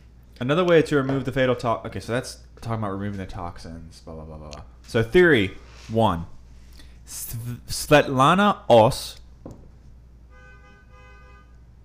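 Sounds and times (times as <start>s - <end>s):
speech: 0.4s - 6.4s, 7.1s - 9.6s
car horn honking: 10.2s - 11.8s.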